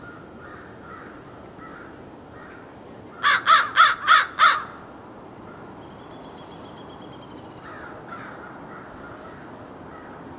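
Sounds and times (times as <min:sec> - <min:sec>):
American crow Corvus brachyrhynchos cawing: 0:00.0 - 0:04.8, 0:07.6 - 0:10.2.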